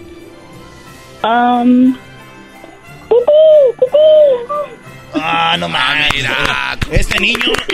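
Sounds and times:
speech: 0:01.2 - 0:02.1, 0:03.2 - 0:07.7
boy imitating a chicken with squawking calls: 0:03.1 - 0:04.8.

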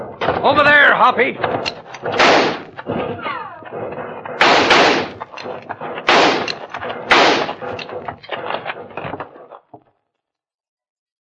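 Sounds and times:
smaller cracks and thuds: 0:00.0 - 0:09.9
gunfire volley in a western canyon ambush: 0:00.2 - 0:08.1
speech: 0:00.3 - 0:04.1.

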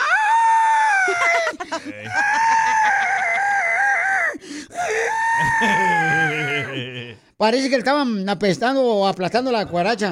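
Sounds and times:
woman screaming shrilly: 0:00.0 - 0:06.7
laughter: 0:00.9 - 0:04.0, 0:05.4 - 0:07.2
speech: 0:01.2 - 0:02.4, 0:05.6 - 0:10.0.

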